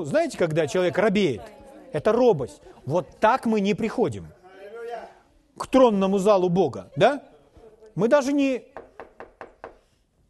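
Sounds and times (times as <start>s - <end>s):
speech: 0.0s - 7.3s, 8.0s - 8.8s
quick soft knocking on a door: 8.7s - 9.8s.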